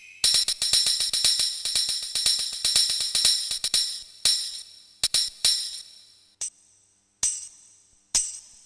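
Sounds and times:
percussion kit: 0:00.2 - 0:06.6.

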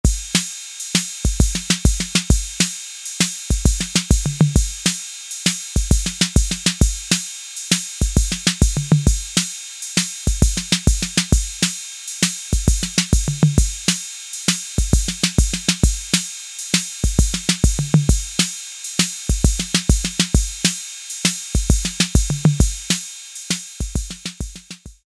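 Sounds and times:
Roland TR-808 drum machine beat: 0:00.0 - 0:25.0.

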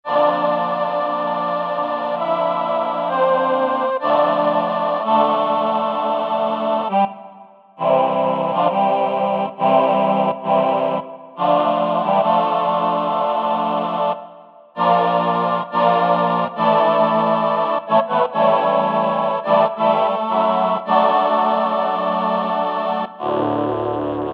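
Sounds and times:
Roland VP-330 synthesizer choir: 0:00.0 - 0:24.3.

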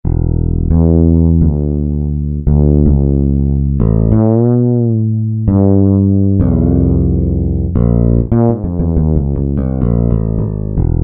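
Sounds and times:
warm fretless bass: 0:00.0 - 0:11.0.

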